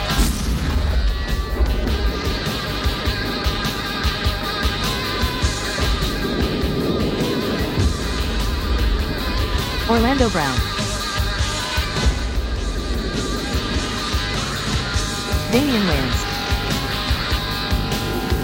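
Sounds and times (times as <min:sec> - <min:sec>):
crackling blasts of battlefield combat: 0:00.0 - 0:18.4
landmine exploding during nighttime battlefield combat: 0:00.1 - 0:10.5, 0:12.0 - 0:16.0
speech: 0:10.0 - 0:10.6, 0:15.6 - 0:16.2.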